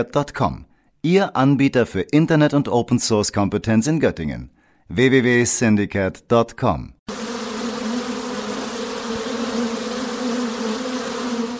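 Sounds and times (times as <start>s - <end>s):
speech: 0.0s - 7.0s
two honeybee colonies buzzing in a secondary-school schoolyard: 7.1s - 11.5s.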